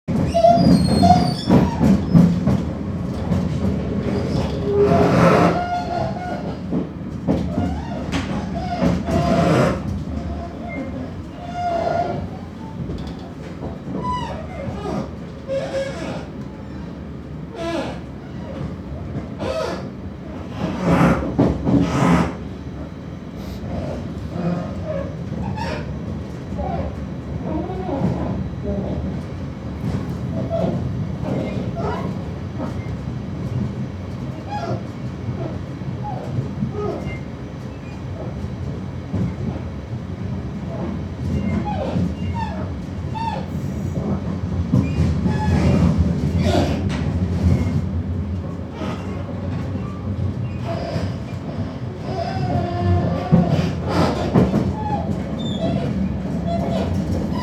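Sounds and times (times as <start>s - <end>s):
train moaning: 0.1s - 57.4s.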